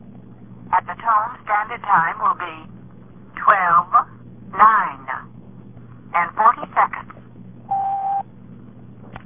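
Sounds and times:
thin telephone-filtered voice talking: 0.7s - 2.7s, 3.4s - 5.3s, 6.1s - 7.1s
touch-tone beeps dialing a direct-dial phone: 7.7s - 8.3s
steady telephone line hum: 7.7s - 8.4s.

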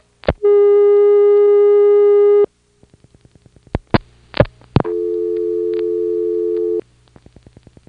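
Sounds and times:
steady telephone tone on an NX1D switch: 0.4s - 2.5s, 4.8s - 6.8s
dial-pulse clicks on an NX1D switch: 4.4s - 6.8s.

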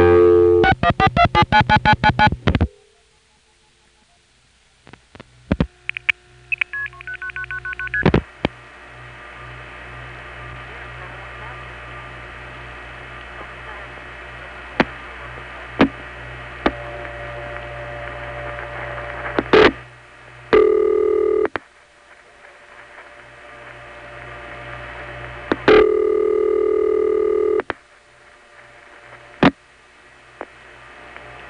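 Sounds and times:
steady electrical hum: 0.0s - 31.4s
telephone line ringing with buzzy tone bursts: 20.6s - 21.6s, 25.6s - 27.7s.

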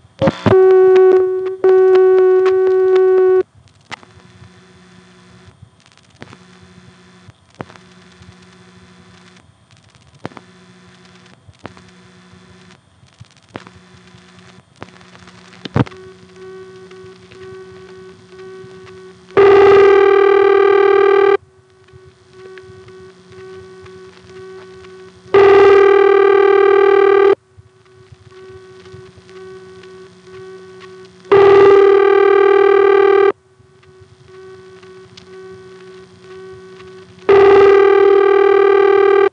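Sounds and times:
soft mechanical hum: 0.0s - 39.3s
steady telephone tone: 0.2s - 3.5s, 15.8s - 39.3s.

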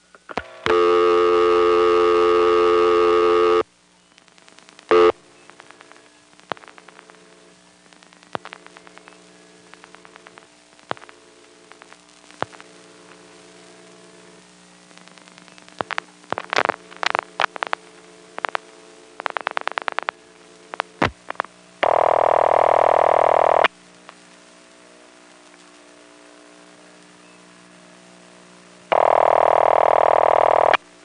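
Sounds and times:
faint telephone line hum: 0.0s - 31.0s
pulse-dialing clicks through an old step-by-step telephone exchange: 0.1s - 3.6s, 4.2s - 13.9s, 14.9s - 24.2s, 28.9s - 30.8s
telephone dial tone: 0.6s - 3.6s, 21.8s - 23.7s, 29.0s - 30.8s.

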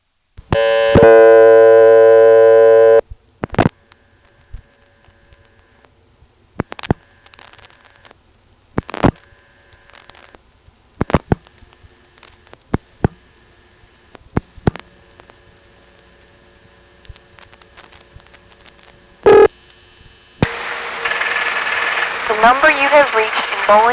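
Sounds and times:
faint telephone line noise: 0.5s - 23.9s
loud steady multi-tone signal on a taped telephone call through a callback circuit: 0.6s - 3.0s, 19.3s - 20.4s.

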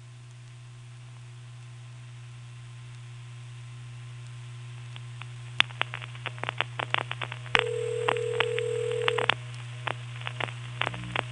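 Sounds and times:
constant low hum: 0.0s - 11.3s
touch-tone telephone dialing beeps of a long-distance number: 7.6s - 9.3s.

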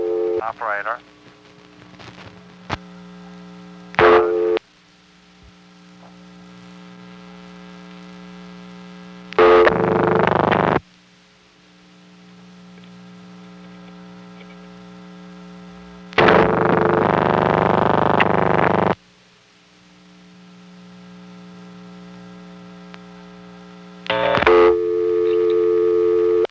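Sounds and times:
steady humming telephone line tone: 0.0s - 0.4s, 2.7s - 4.6s, 6.0s - 10.8s, 11.8s - 19.0s, 20.0s - 26.4s
telephone class of service tone bursts: 0.0s - 0.4s, 4.0s - 4.6s, 9.4s - 10.4s, 24.1s - 26.4s
speech: 0.4s - 1.1s.

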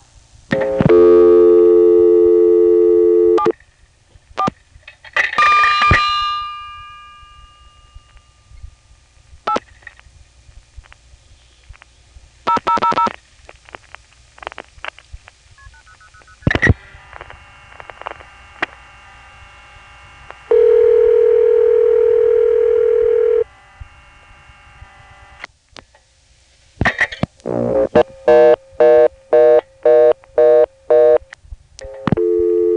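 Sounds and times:
faint payphone line hum: 0.0s - 32.7s
payphone dial tone for a local call: 0.8s - 3.5s, 20.5s - 23.5s, 31.8s - 32.7s.

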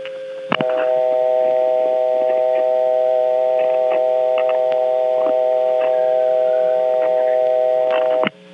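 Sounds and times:
telephone dial tone from a phone at a telephone company office in Warsaw: 0.6s - 8.3s.

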